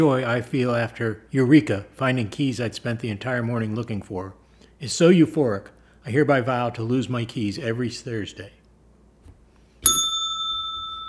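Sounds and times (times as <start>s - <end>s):
speech: 0.0s - 8.6s
single bright bell strike ringing: 9.8s - 11.0s.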